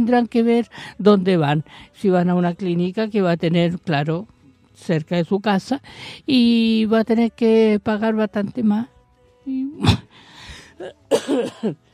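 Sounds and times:
speech: 0:00.0 - 0:08.9, 0:09.5 - 0:11.8
coughing and throat clearing from a scratchy throat: 0:09.8 - 0:10.1, 0:10.8 - 0:11.9.

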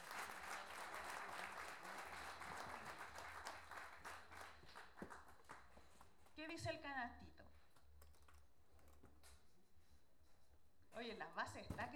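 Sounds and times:
audience applause at a national improvised-verse competition: 0:00.0 - 0:05.6
speech: 0:06.4 - 0:07.4, 0:11.0 - 0:11.9.

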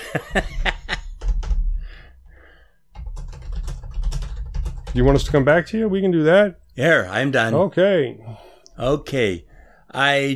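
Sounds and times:
laughter: 0:00.0 - 0:01.2
speech: 0:00.1 - 0:00.7, 0:05.0 - 0:10.3
fingers typing on a computer keyboard: 0:00.5 - 0:01.7, 0:02.9 - 0:05.6.

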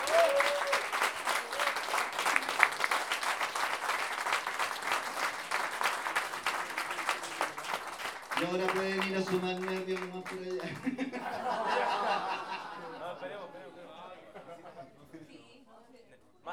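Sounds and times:
audience applause at a payador improvised-verse tournament: 0:00.0 - 0:12.8
speech: 0:08.4 - 0:12.6
laughter: 0:10.2 - 0:15.2.

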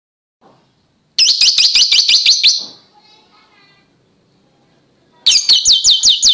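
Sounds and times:
Oriental magpie-robin song: 0:01.2 - 0:02.8, 0:05.2 - 0:06.3.

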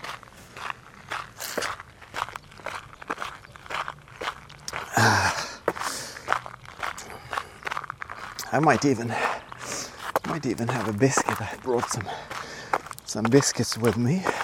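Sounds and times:
footsteps crunching at a walking pace during a run break: 0:00.0 - 0:14.4
speech: 0:01.6 - 0:01.8, 0:08.5 - 0:09.3, 0:10.4 - 0:12.4, 0:13.1 - 0:14.4
person exhaling: 0:04.9 - 0:06.2, 0:12.1 - 0:12.8.

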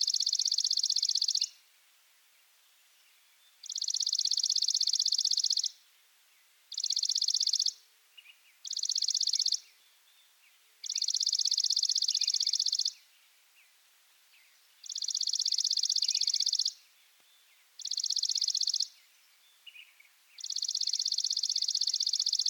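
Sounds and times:
faint chirps from other birds: 0:00.0 - 0:01.7, 0:02.5 - 0:22.4.

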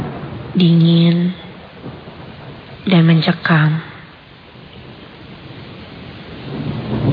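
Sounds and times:
rain drops beating on a glass window during a cold downpour in Bandung: 0:00.0 - 0:07.1
speech: 0:00.5 - 0:01.4, 0:02.9 - 0:03.9.

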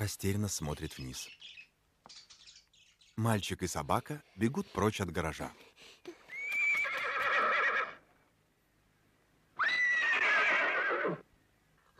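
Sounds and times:
speech: 0:00.0 - 0:01.6, 0:03.2 - 0:06.2
horse neighing in a cramped dim garage: 0:06.3 - 0:08.0, 0:09.6 - 0:11.2.

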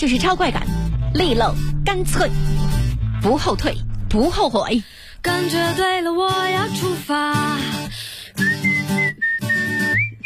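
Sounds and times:
speech: 0:00.0 - 0:02.6, 0:03.2 - 0:08.5
pop song: 0:04.9 - 0:09.1
person whistling a wavering, sliding melody: 0:08.4 - 0:10.2.

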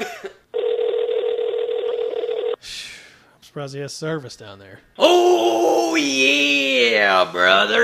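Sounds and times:
steady buzzy electronic telephone dialing tone: 0:00.6 - 0:02.6
speech: 0:03.6 - 0:07.8.

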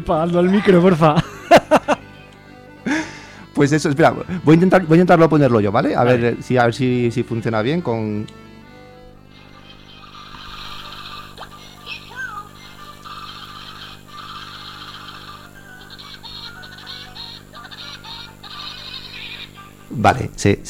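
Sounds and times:
speech: 0:00.0 - 0:01.7, 0:03.6 - 0:08.4, 0:20.0 - 0:20.6
steady low hum: 0:00.0 - 0:20.6
bird laugh-like call with harsh honking notes: 0:09.5 - 0:19.8.

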